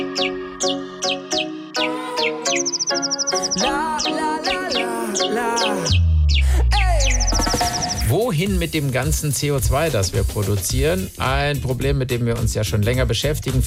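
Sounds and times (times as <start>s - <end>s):
robin singing whistled phrases and trills: 0.0s - 8.1s
speech: 8.4s - 13.6s.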